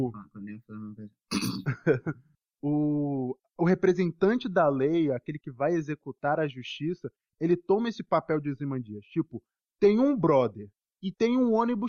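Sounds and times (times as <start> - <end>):
speech: 0.0 - 1.2, 1.8 - 2.3, 3.7 - 11.8
throat clearing from something stuck in the throat: 1.3 - 1.7.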